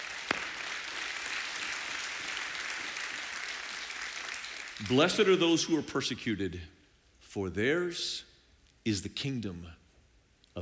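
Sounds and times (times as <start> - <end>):
single sharp clap: 0.0 - 1.1
congregation applauding: 0.0 - 5.3
speech: 4.8 - 6.8, 7.4 - 9.8.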